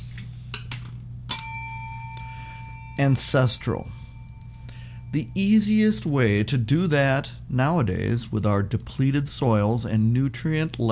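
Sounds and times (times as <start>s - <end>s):
low hum: 0.0s - 10.8s
small bell ringing: 1.3s - 5.5s
speech: 3.0s - 4.0s, 5.2s - 10.8s.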